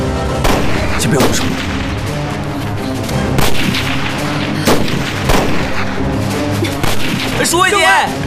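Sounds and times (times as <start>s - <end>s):
continuous rumbling battlefield barrage of shots: 0.4s - 2.1s, 3.3s - 6.2s
battlefield gunfire blasts as enemy forces open fire: 0.4s - 2.4s, 3.2s - 7.6s
speech: 1.0s - 1.7s, 7.4s - 8.2s.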